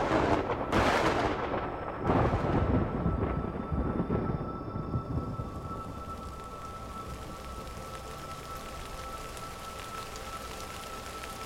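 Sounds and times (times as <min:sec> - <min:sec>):
thunder crack: 0:00.0 - 0:05.8.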